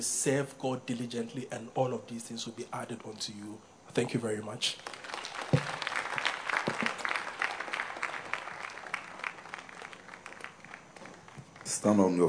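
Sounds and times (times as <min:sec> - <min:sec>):
speech: 0:00.0 - 0:05.8, 0:11.8 - 0:12.2
audience clapping hands in applause: 0:04.8 - 0:12.2.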